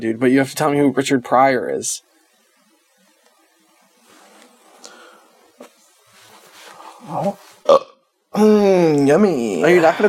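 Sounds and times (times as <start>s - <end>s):
speech: 0.0s - 2.1s, 7.1s - 7.8s, 8.4s - 10.0s
guttural burp: 7.6s - 8.6s.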